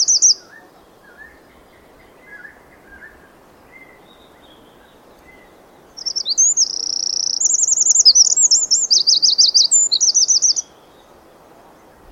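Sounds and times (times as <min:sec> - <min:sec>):
Eurasian wren Troglodytes troglodytes song of buzzy trills and warbled rolls: 0:00.0 - 0:12.1
faint Eurasian wren chirps: 0:00.0 - 0:12.1.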